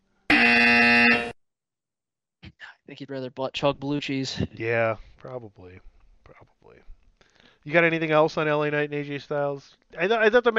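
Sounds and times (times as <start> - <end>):
harsh loud electronic buzzer: 0.3 - 1.4
speech: 2.9 - 6.9, 7.6 - 10.5.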